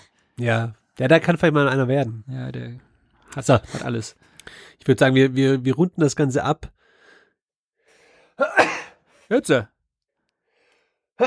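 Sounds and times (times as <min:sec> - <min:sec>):
speech: 0:00.4 - 0:06.8, 0:08.4 - 0:08.6, 0:09.3 - 0:09.7
person sneezing: 0:08.4 - 0:09.0.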